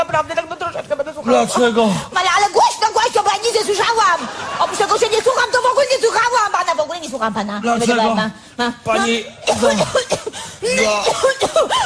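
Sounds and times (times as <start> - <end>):
speech: 0.1 - 11.7
woman coughing: 9.4 - 11.8.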